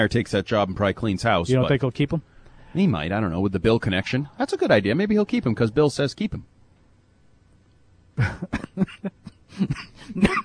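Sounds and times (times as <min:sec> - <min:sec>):
speech: 0:00.0 - 0:06.5, 0:08.2 - 0:10.4
person stifling a cough after laughing: 0:08.2 - 0:10.4.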